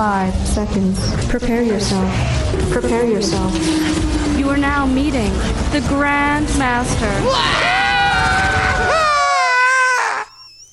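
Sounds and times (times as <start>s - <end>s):
faint rumble: 0.0s - 7.3s
speech: 0.0s - 8.4s
loud sustained scream in a played audio clip: 7.2s - 10.5s.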